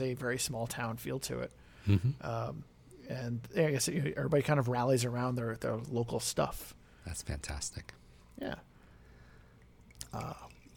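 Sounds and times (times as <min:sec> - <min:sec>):
speech: 0:00.0 - 0:08.7, 0:10.1 - 0:10.5
faint drip: 0:09.2 - 0:10.7
sake glugging from a bottle into a cup: 0:09.5 - 0:10.7.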